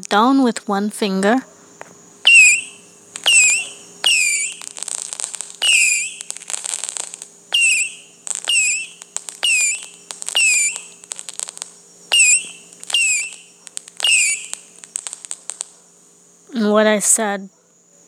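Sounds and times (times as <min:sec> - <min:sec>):
speech: 0:00.1 - 0:01.5, 0:17.0 - 0:17.6
firework rocket whistles: 0:01.3 - 0:15.9.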